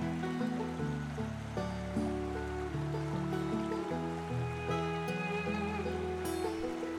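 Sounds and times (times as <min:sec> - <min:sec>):
soft melodic tones shifting chord: 0:00.0 - 0:06.9
steady rushing water: 0:00.0 - 0:06.9.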